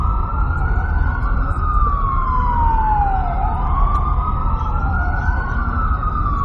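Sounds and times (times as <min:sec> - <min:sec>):
emergency vehicle siren passing on a New York City street: 0:00.0 - 0:06.4
traffic rumble on a New York City street: 0:00.0 - 0:06.4.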